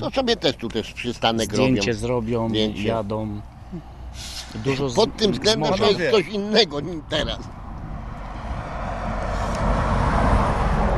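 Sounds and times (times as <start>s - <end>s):
speech: 0.0s - 7.6s
heavy semi-trailer truck passing on road: 3.0s - 10.9s.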